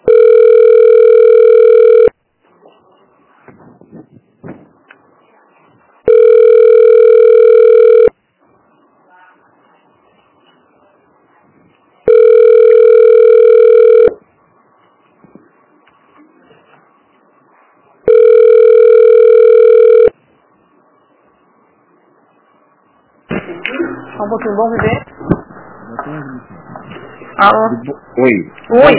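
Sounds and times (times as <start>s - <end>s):
telephone ringback tone while waiting on hold: 0.0s - 2.1s, 6.1s - 8.1s, 12.1s - 14.2s, 18.1s - 20.1s
speech: 24.4s - 25.0s, 27.4s - 28.9s.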